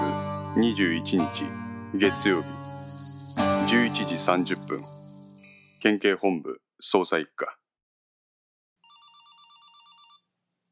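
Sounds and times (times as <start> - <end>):
speech: 0.6 - 2.6, 3.7 - 5.0, 5.8 - 7.6
phone ringing with a bright warbling electronic tone: 8.8 - 10.3.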